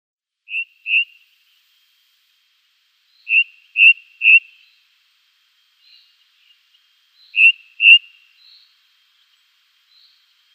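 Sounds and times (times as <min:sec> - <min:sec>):
ring ouzel song of clear piping whistled notes: 0:00.5 - 0:01.2, 0:03.2 - 0:04.7, 0:07.2 - 0:08.6.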